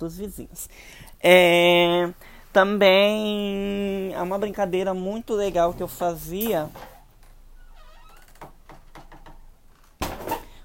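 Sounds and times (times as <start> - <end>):
speech: 0.0 - 6.9
door being closed: 7.6 - 10.6.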